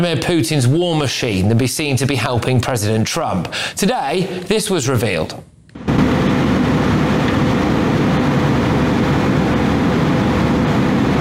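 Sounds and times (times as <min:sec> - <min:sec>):
speech: 0:00.0 - 0:05.9
Russian fighter jet roaring: 0:05.8 - 0:11.2.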